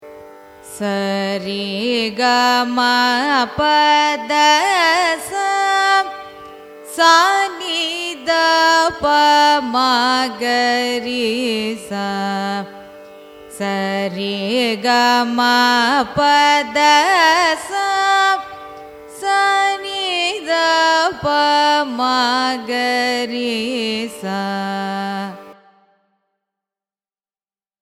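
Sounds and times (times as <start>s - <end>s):
Carnatic music ascending and descending raga scale: 0.0s - 26.2s.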